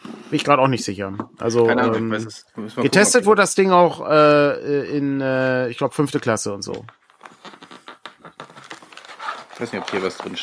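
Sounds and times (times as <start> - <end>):
speech: 0.3 - 7.0, 9.6 - 10.4
rustling of paper pages being flipped: 6.7 - 10.4.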